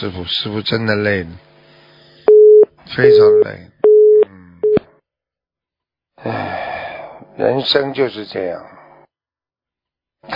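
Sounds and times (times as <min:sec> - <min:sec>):
speech: 0:00.0 - 0:01.5, 0:02.9 - 0:03.7, 0:06.2 - 0:06.6, 0:07.4 - 0:08.8
telephone busy tone beeps after a call hangs up: 0:02.3 - 0:04.8.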